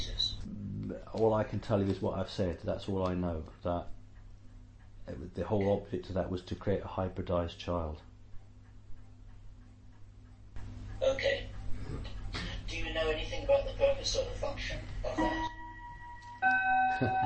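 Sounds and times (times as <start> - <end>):
low steady hum: 0.0 - 17.2
speech: 0.9 - 4.0, 5.1 - 8.1, 13.0 - 15.5
clock chiming: 15.1 - 17.2.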